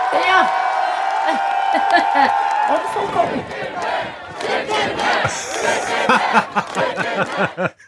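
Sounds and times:
speech: 0.1s - 0.7s, 1.3s - 7.8s
laughter: 1.3s - 2.3s, 5.3s - 7.8s
large crowd of hundreds chanting a nickname in unison: 3.3s - 7.7s.

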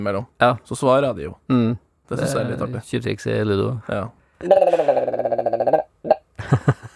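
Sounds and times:
speech: 0.0s - 5.8s
person imitating a willow ptarmigan call: 4.4s - 6.3s.

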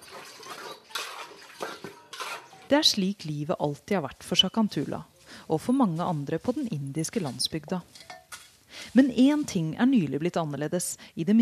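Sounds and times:
water from a container splashing and sloshing while washing dishes: 0.0s - 2.6s
pots and utensils clinking while washed by hand: 0.0s - 2.7s, 7.3s - 8.6s
speech: 2.7s - 8.1s, 9.0s - 11.4s.

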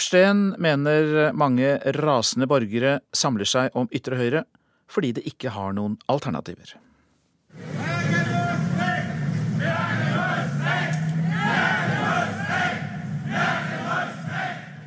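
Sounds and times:
speech: 0.0s - 6.9s, 7.5s - 8.2s
constant roar of voices: 7.6s - 14.7s
protest crowd chanting slogans in unison: 7.6s - 14.8s.

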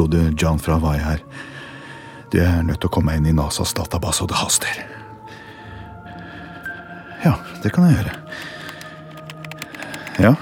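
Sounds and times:
speech: 0.0s - 1.5s, 2.3s - 5.0s, 7.2s - 8.6s, 10.2s - 10.3s
typing on a computer keyboard: 8.1s - 10.3s.

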